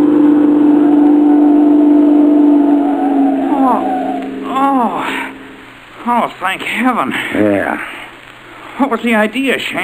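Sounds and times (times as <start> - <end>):
car engine revving: 0.0 - 5.9
speech: 6.1 - 8.1, 8.8 - 9.8.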